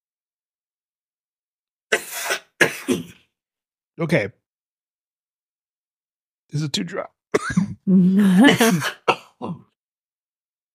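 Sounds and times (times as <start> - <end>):
person coughing and hacking from too much pepper: 1.9 - 3.4, 7.3 - 7.8, 8.4 - 9.8
speech: 4.0 - 4.4, 6.5 - 9.7.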